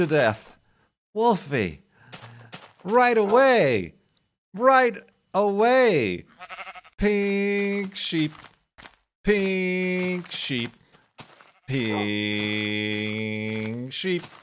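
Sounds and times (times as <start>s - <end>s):
speech: 0.0s - 0.5s, 1.2s - 2.2s, 2.8s - 6.3s, 7.0s - 8.5s, 9.2s - 10.8s, 11.7s - 14.4s
sheep bleating: 6.3s - 7.0s, 11.4s - 12.2s.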